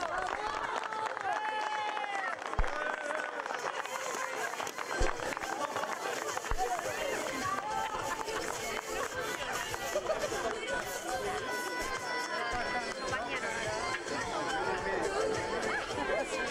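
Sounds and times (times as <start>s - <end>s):
audience applauding: 0.0s - 11.5s
crowd chatter: 0.0s - 16.5s
laughter: 2.6s - 16.5s.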